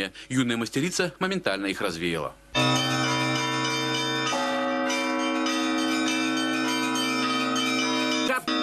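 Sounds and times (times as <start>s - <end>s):
speech: 0.0s - 2.7s
church bells rung by bell-ringer in a dense overlapping peal: 2.6s - 8.6s.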